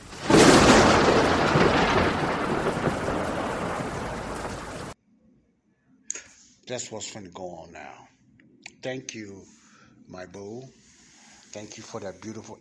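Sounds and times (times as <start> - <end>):
thunderclap and rumble: 0.0 - 5.0
speech: 6.7 - 8.1, 8.8 - 10.8, 11.5 - 12.5.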